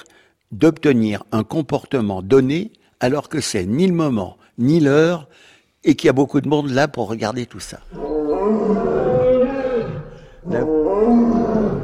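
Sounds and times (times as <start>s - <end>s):
speech: 0.0s - 8.7s
lion roaring: 7.8s - 11.8s.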